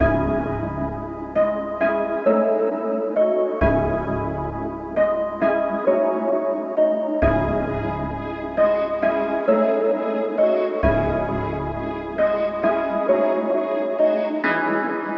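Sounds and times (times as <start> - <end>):
melody: 0.0 - 15.0.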